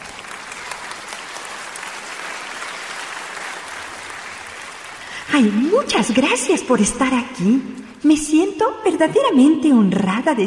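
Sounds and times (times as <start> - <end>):
crowd clapping: 0.0 - 6.4
speech: 5.3 - 10.4.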